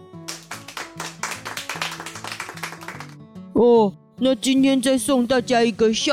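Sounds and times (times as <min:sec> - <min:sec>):
group clapping hands in a steady brisk rhythm: 0:00.2 - 0:03.2
speech: 0:03.6 - 0:06.1.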